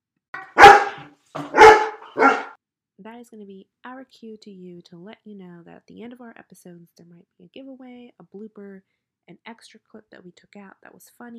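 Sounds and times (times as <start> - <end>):
dog barking: 0.4 - 2.6
speech: 3.0 - 11.3.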